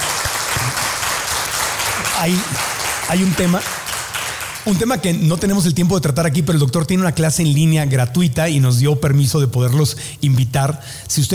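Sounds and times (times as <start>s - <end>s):
audience applause honoring a doctor after a talk: 0.0s - 4.8s
speech: 2.2s - 3.8s, 4.7s - 11.3s.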